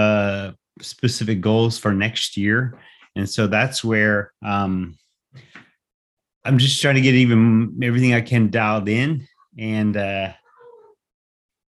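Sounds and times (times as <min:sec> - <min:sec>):
speech: 0:00.8 - 0:05.6, 0:06.4 - 0:10.4
cat meowing loudly: 0:10.4 - 0:11.0.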